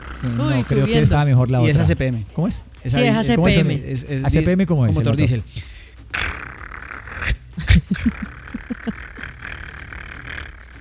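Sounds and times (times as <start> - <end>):
small dog growling angrily: 0.0 - 1.9, 6.0 - 10.7
steady hum: 0.0 - 10.7
speech: 0.2 - 5.7
laughter: 0.4 - 5.8, 7.2 - 9.8.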